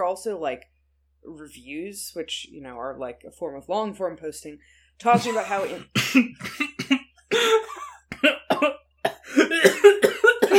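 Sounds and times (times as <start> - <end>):
speech: 0.0 - 7.6
person coughing: 5.1 - 10.5.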